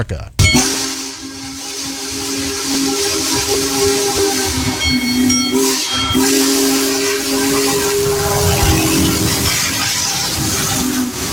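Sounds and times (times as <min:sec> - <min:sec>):
speech: 0:00.0 - 0:00.4, 0:02.4 - 0:06.8
Union Pacific Big Boy 4014 steam locomotive deep whistle: 0:00.4 - 0:11.3
rumbling steam locomotive engine on Norfolk Southern tracks: 0:04.2 - 0:11.3.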